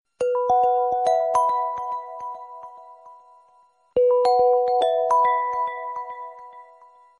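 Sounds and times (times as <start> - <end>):
cute wind chime text message tone: 0.2 - 7.1.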